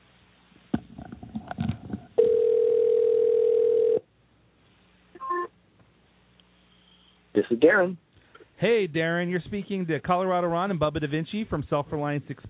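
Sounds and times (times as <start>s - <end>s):
telephone ringback tone on a call: 2.2s - 4.0s
speech: 7.5s - 12.4s.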